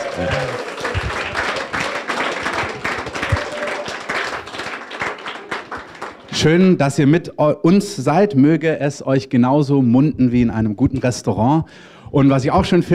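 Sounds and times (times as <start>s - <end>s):
audience applause for a couple on their wedding anniversary: 0.0s - 6.4s
speech: 0.2s - 0.6s, 6.4s - 12.9s.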